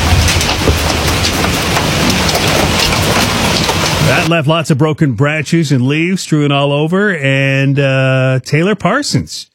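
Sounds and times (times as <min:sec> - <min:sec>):
hail pounding down in the north end of Regina: 0:00.0 - 0:04.4
speech: 0:04.2 - 0:09.5.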